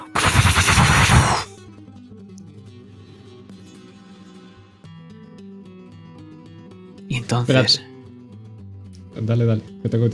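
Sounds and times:
cannon fire barrage: 0.0s - 1.5s
speech: 7.2s - 7.9s, 9.2s - 10.1s.

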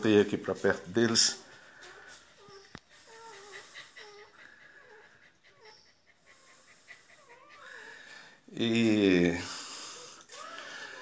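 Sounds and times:
speech: 0.0s - 1.4s, 8.6s - 9.5s
several puppies whimpering and whining: 0.0s - 10.9s
soft breathy snuffling: 0.0s - 10.9s.

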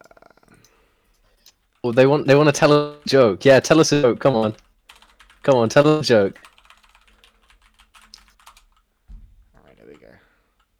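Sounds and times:
rapid keyboard typing of messages: 0.6s - 8.9s
speech: 1.8s - 4.6s, 5.5s - 6.5s
low thump: 9.1s - 9.6s.

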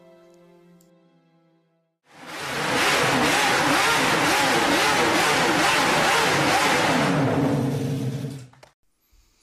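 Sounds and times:
six-cylinder Honda RC166 250 Grand Prix motorcycle engine revving: 2.1s - 8.5s.

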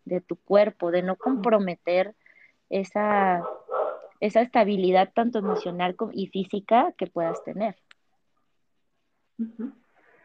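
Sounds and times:
speech: 0.1s - 3.6s, 4.2s - 7.9s, 9.4s - 9.8s
small dog barking in short sharp yips: 3.4s - 4.1s, 5.4s - 5.8s, 7.2s - 7.6s.

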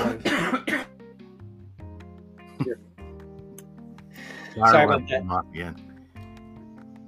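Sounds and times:
coughing into a microphone: 0.0s - 1.0s
speech: 4.6s - 5.9s.

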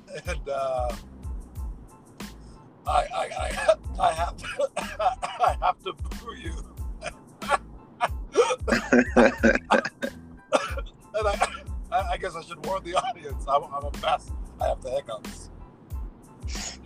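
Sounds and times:
laughter: 0.0s - 0.6s, 3.0s - 6.6s, 7.4s - 13.4s
speech: 0.1s - 1.2s, 2.9s - 7.2s, 12.4s - 15.5s
hiccups: 8.3s - 11.6s.

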